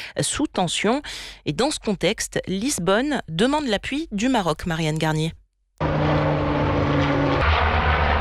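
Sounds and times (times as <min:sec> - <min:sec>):
speech: 0:00.1 - 0:06.0
propeller engines of a Canadair amphibious firefighting plane droning: 0:05.8 - 0:08.1.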